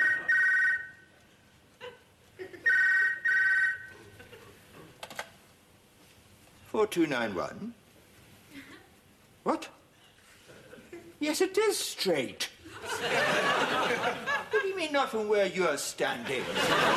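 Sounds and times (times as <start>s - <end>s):
telephone bell ringing: 0.0s - 0.9s, 2.7s - 3.9s
speech: 6.8s - 7.8s, 11.3s - 16.9s
laughter: 12.7s - 14.8s, 16.2s - 16.9s.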